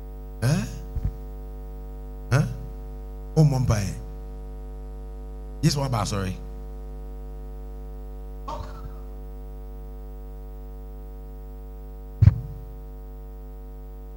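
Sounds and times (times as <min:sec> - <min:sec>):
steady electrical hum: 0:00.0 - 0:14.1
speech: 0:03.4 - 0:04.0, 0:05.6 - 0:06.4
softer breathy vocal burst: 0:08.5 - 0:09.1
person sneezing: 0:08.5 - 0:09.2.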